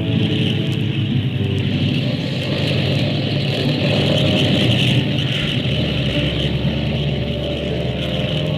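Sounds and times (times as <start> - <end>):
airplane engines roaring at full power for takeoff: 0.0 - 8.5.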